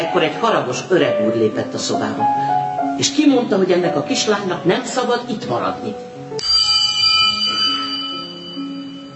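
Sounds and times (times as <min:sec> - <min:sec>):
speech: 0:00.1 - 0:06.1
small hand bell rung to summon a servant: 0:06.4 - 0:09.1.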